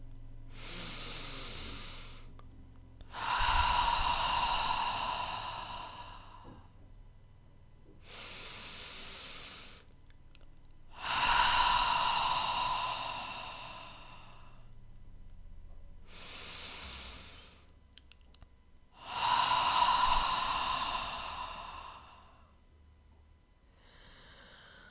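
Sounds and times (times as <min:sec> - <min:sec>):
slow inhales through nose and sighing exhales through mouth: 0:00.0 - 0:02.4, 0:03.0 - 0:06.8, 0:08.0 - 0:09.9, 0:10.9 - 0:14.8, 0:16.0 - 0:17.7, 0:18.9 - 0:22.6, 0:23.7 - 0:24.9.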